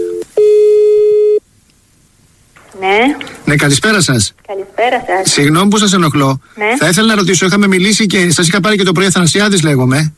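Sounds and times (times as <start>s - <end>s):
telephone busy tone on an outgoing line: 0.0s - 1.4s
speech: 3.5s - 10.1s.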